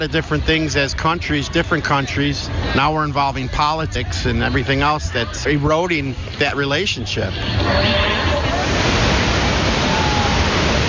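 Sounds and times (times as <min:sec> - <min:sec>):
speech: 0:00.0 - 0:08.6
large waterfall roaring: 0:07.3 - 0:10.8.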